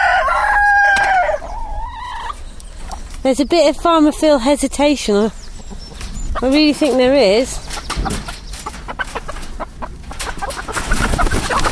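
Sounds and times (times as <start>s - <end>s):
cockerel clucking and squawking while being caught: 0.0s - 3.0s, 7.6s - 11.6s
scuffling and rustling as the bird is handled: 2.3s - 11.6s
speech: 3.3s - 5.4s, 6.4s - 8.3s.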